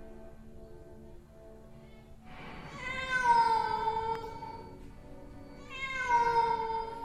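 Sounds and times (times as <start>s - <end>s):
cat meowing mournfully: 2.7s - 4.7s, 5.6s - 7.0s.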